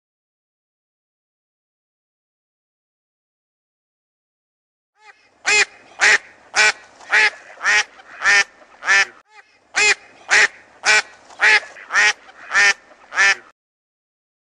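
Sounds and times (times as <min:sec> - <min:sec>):
duck quacking: 0:05.0 - 0:13.5.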